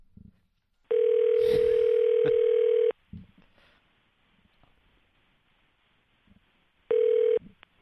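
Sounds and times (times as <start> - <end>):
outgoing phone call electronic ring tone through a handset: 0.9 - 2.9, 6.9 - 7.4.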